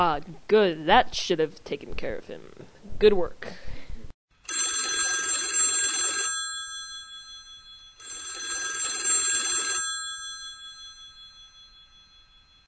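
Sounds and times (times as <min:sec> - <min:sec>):
speech: 0:00.2 - 0:03.6
old-style telephone bell ringing: 0:04.5 - 0:12.6.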